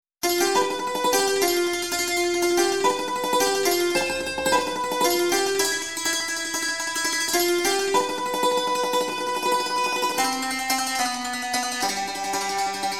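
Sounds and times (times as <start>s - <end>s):
dulcimer tremolo with reverb: 0.2s - 12.9s.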